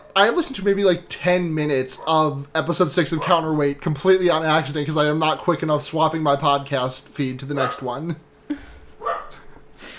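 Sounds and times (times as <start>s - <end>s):
speech: 0.2s - 8.6s
dog barking: 3.2s - 3.5s, 7.6s - 8.0s, 9.0s - 9.4s.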